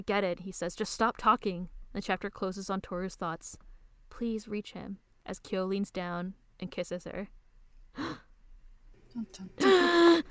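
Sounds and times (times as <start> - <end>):
speech: 0.0 - 7.4, 9.2 - 10.3
dramatic gasp from a single voice: 8.0 - 8.2, 9.6 - 10.3
drawn-out voiced exclamation: 9.6 - 10.3.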